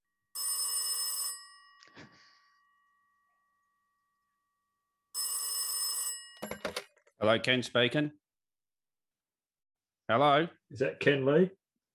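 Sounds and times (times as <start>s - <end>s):
telephone ringing on an outgoing call: 0.3s - 3.6s, 5.1s - 6.9s
speech: 7.2s - 8.2s, 10.1s - 11.6s.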